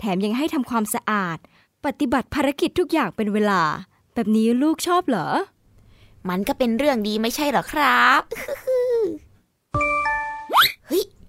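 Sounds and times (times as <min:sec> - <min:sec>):
speech: 0:00.0 - 0:05.5, 0:06.2 - 0:09.9
messaging app notification chime on a phone: 0:09.8 - 0:10.5.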